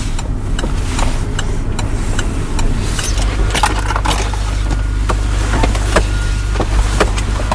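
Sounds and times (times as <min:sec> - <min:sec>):
car pulling in and parking at a port: 0:00.0 - 0:07.5
steady low rumble: 0:00.0 - 0:07.5
sharp clicks and clunks of a car door: 0:02.2 - 0:07.5.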